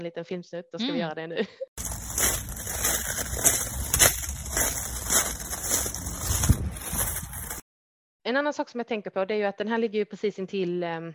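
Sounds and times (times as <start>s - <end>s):
speech: 0.0s - 1.8s, 8.3s - 11.1s
footsteps crunching along a gravelly path: 1.8s - 7.6s
wind rumble: 1.8s - 7.6s.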